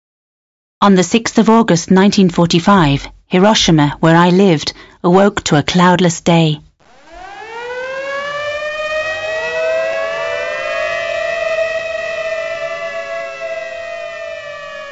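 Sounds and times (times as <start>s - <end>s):
speech: 0.8s - 6.7s
air raid siren wailing warning of an enemy plane: 6.8s - 14.8s.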